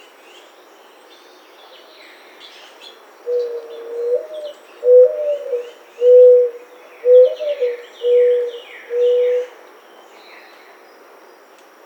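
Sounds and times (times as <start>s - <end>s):
mourning dove cooing: 3.3s - 9.6s
other birds giving thin high chirps: 3.3s - 10.2s.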